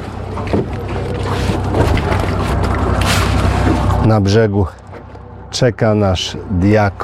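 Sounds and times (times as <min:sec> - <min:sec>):
rushing water: 0:00.0 - 0:04.2
boat motor humming as the boat sets off: 0:00.0 - 0:07.0
speech: 0:04.1 - 0:04.8, 0:05.5 - 0:07.0.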